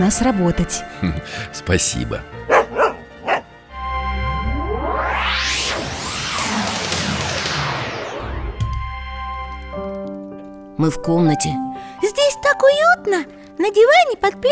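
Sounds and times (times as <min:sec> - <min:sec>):
speech: 0:00.0 - 0:02.5, 0:10.8 - 0:14.5
dog barking: 0:02.5 - 0:03.5
long sweeping whoosh: 0:03.8 - 0:08.8.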